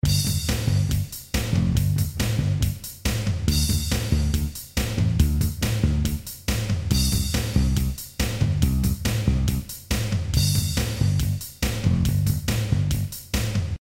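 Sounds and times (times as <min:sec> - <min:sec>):
rhythm: 0:00.0 - 0:13.7.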